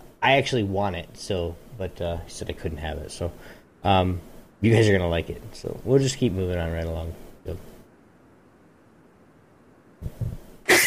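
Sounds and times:
speech: 0.2 - 7.7
person sneezing: 10.0 - 10.8.

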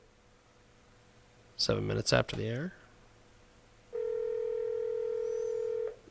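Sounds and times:
speech: 1.6 - 2.8
steady telephone tone on an outgoing call: 3.9 - 6.0.

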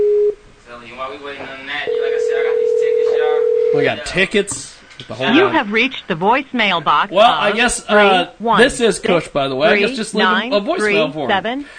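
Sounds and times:
ringback tone of an outgoing telephone call: 1.9 - 3.9
speech: 3.8 - 11.7.

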